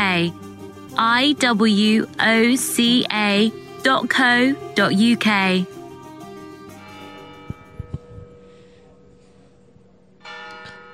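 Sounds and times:
speech: 0:00.2 - 0:00.4, 0:01.0 - 0:05.8
large bell tolling: 0:06.6 - 0:10.9.

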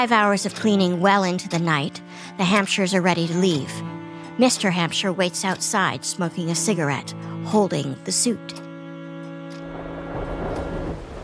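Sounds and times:
speech: 0:00.0 - 0:08.7
rain beginning to fall: 0:09.6 - 0:11.2.

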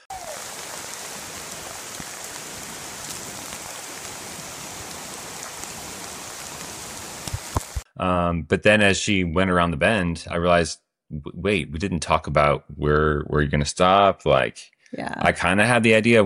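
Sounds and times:
rushing creek water: 0:00.1 - 0:07.8
speech: 0:08.0 - 0:16.2.

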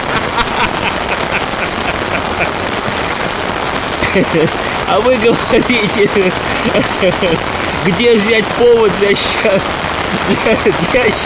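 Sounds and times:
laughter: 0:00.0 - 0:07.4, 0:10.1 - 0:11.2
heavy rain downpour: 0:00.0 - 0:11.2
speech: 0:02.4 - 0:02.6, 0:04.2 - 0:11.2.

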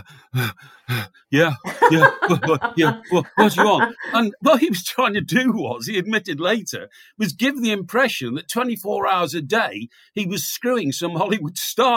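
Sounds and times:
man imitating heavy breathing on the phone: 0:00.0 - 0:01.3
laughter: 0:00.0 - 0:05.7
speech: 0:00.0 - 0:11.9.

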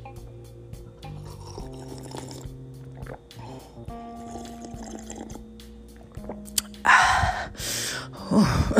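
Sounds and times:
faint steady hum: 0:00.0 - 0:08.7
slurping sips of water: 0:01.2 - 0:05.4
swallowing water: 0:01.2 - 0:06.7
breathy exhale: 0:06.9 - 0:08.7.

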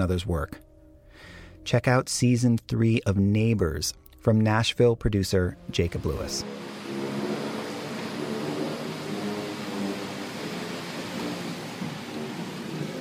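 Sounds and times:
speech: 0:00.0 - 0:06.7
vehicles whooshing past: 0:05.9 - 0:12.9
road traffic roar in the rain: 0:06.0 - 0:12.9.

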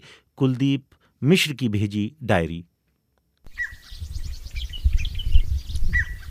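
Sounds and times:
speech: 0:00.4 - 0:02.7
birds chirping and twittering outdoors: 0:03.5 - 0:06.2
low rumble of wind: 0:03.5 - 0:06.2.

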